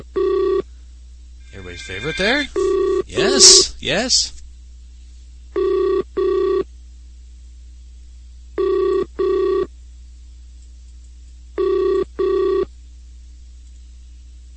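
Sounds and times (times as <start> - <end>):
faint low hum: 0.0 - 14.5
telephone ringing with electronic double-burst tone: 1.5 - 3.7, 8.6 - 9.6, 11.6 - 12.6
speech: 1.8 - 4.4.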